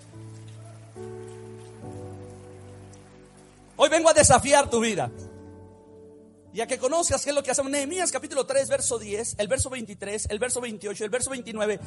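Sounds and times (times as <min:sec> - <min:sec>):
crowd applauding: 0:00.0 - 0:04.0
sustained keyboard chords: 0:00.0 - 0:10.6
speech: 0:03.8 - 0:05.2, 0:06.6 - 0:11.8.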